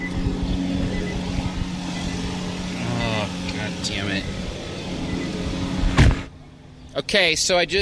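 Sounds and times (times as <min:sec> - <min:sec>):
electric car powered door whirring open: 0:00.0 - 0:06.3
steady idling hum: 0:00.0 - 0:07.8
person muttering: 0:02.7 - 0:03.5
speech: 0:03.8 - 0:04.4, 0:07.0 - 0:07.8
sharp clunk of car door: 0:06.0 - 0:06.3.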